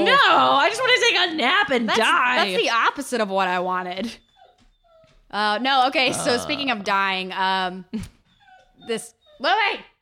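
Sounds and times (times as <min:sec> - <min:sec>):
speech: 0:00.2 - 0:04.3, 0:05.3 - 0:08.2, 0:08.8 - 0:09.9
dog whimpering outside: 0:04.0 - 0:05.3, 0:06.1 - 0:06.8, 0:08.1 - 0:09.8.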